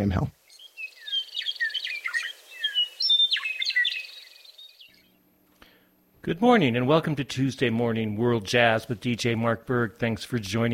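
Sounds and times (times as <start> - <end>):
speech: 0.0 - 0.4, 6.2 - 10.7
bird singing whistles and trills: 0.0 - 5.2.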